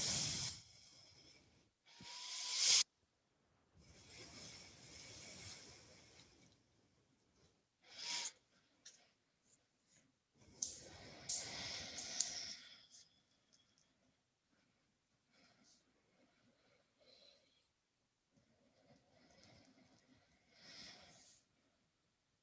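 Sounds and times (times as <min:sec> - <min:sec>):
slow breathing in and out through the nose during a relaxation pose: 0:00.0 - 0:02.9, 0:03.8 - 0:06.8, 0:07.4 - 0:21.9
faint clicks: 0:10.5 - 0:13.9.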